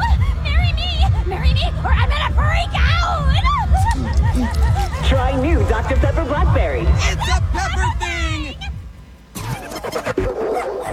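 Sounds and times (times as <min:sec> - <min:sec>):
laughter: 0:00.0 - 0:08.8
dog barking and yelping: 0:10.2 - 0:10.9.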